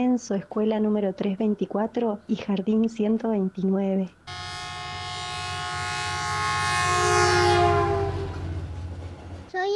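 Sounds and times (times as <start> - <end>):
speech: 0.0 - 4.5
short wavering tones: 4.3 - 9.4
train rumbling along: 4.3 - 9.6.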